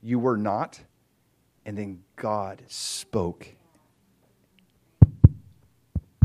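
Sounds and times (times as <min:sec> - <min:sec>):
speech: 0:00.0 - 0:00.9, 0:01.6 - 0:03.6
fetal heartbeat lub-dub thumps: 0:05.0 - 0:06.2.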